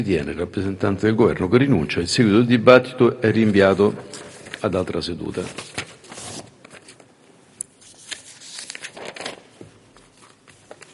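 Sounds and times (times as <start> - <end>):
speech: 0.0 - 5.8
sheets of paper rustling and crumpling: 3.4 - 7.1, 7.8 - 10.9.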